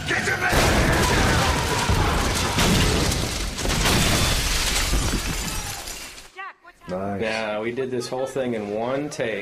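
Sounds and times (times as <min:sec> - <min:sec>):
speech: 0:00.1 - 0:00.6, 0:07.2 - 0:09.4
explosion staged for a film action scene in an alley behind sound stages: 0:00.1 - 0:05.8.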